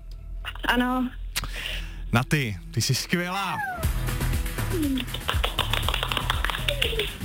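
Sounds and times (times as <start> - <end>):
speech: 0.7 - 4.1, 4.7 - 5.5
small group of people clapping: 4.8 - 7.2.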